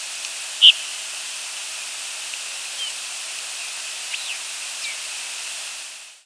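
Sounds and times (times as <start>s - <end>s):
steady hiss: 0.0s - 6.2s
rose-breasted grosbeak sharp chip-like squeak: 0.6s - 0.9s, 2.8s - 3.0s, 4.1s - 5.0s.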